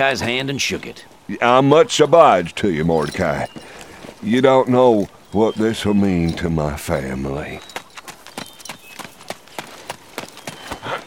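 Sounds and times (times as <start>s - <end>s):
speech: 0.0s - 7.8s
hoofbeats of a mule ridden bareback at a splay-footed trot: 0.0s - 11.0s.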